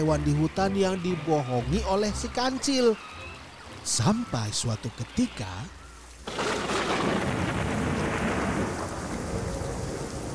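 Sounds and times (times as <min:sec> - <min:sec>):
speech: 0:00.0 - 0:03.2, 0:03.8 - 0:06.4
heavy rain pouring in a forest during a storm: 0:00.0 - 0:10.3
rumbling thunder: 0:06.3 - 0:10.3.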